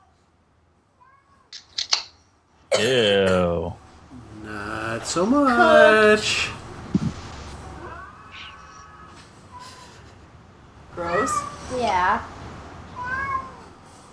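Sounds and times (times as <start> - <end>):
speech: 2.8 - 3.7, 5.1 - 6.6
cat meowing: 7.8 - 9.9, 11.0 - 11.7, 12.9 - 13.8.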